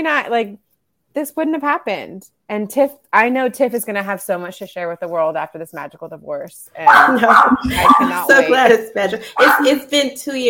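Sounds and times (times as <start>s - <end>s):
speech: 0.0s - 10.4s
dog barking with short sharp yaps: 6.9s - 8.3s, 9.4s - 9.7s
woman laughing: 6.9s - 9.8s.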